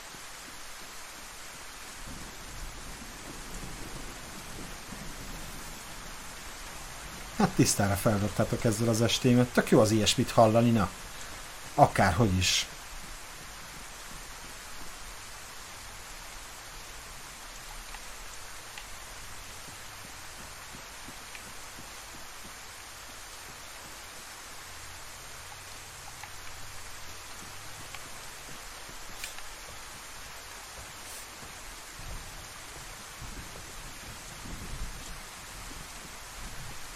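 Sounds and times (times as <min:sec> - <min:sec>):
rain falling in a video game: 0:00.0 - 0:36.9
speech: 0:07.4 - 0:11.1, 0:11.8 - 0:12.8.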